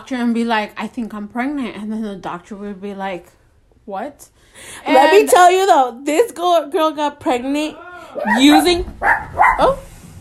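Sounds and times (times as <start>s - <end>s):
speech: 0.0s - 9.9s
dog barking: 8.2s - 9.8s.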